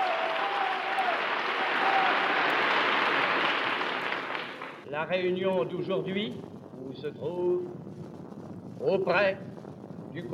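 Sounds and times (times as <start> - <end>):
whole hall standing and applauding at a large patriotic rally: 0.0 - 4.8
speech: 5.0 - 8.1, 8.8 - 9.5, 10.1 - 10.3.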